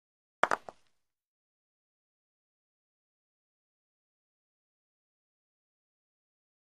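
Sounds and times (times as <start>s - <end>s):
croquet ball hit: 0.4s - 0.8s.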